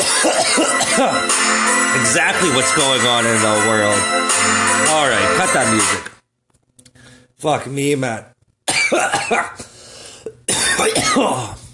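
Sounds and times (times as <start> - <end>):
heavy hacking coughs after smoking from a one-hitter: 0.0 - 1.2, 8.7 - 9.7, 10.4 - 11.5
speech: 1.0 - 6.2, 7.4 - 8.3, 8.9 - 9.7, 10.5 - 11.6.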